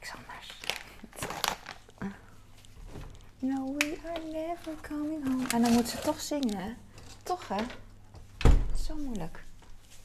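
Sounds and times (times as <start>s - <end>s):
crinkling plastic cheese and chicken packaging: 0.3s - 7.8s
speech: 3.4s - 7.8s, 8.9s - 9.4s.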